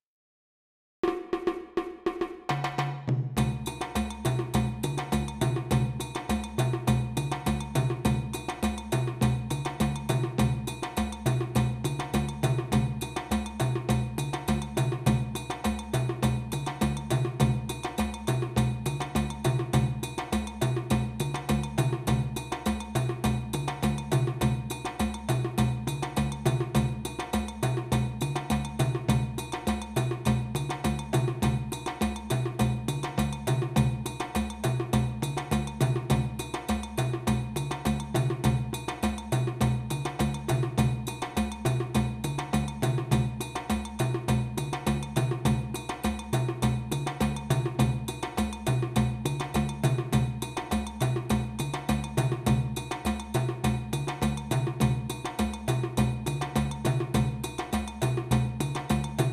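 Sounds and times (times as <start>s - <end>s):
percussion: 1.0s - 59.3s.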